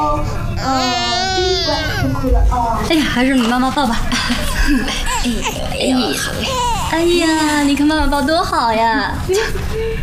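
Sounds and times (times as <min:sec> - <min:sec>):
baby crying in loud wavering wails: 0:00.6 - 0:02.2, 0:04.5 - 0:07.8
speech: 0:02.2 - 0:10.0.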